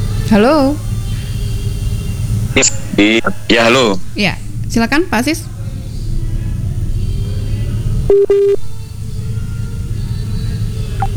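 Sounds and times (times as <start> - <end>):
low steady rumble: 0.0 - 11.1
speech: 0.3 - 0.9, 2.6 - 5.5, 8.1 - 8.6
dropped telephone call double beep line tone: 8.1 - 8.6.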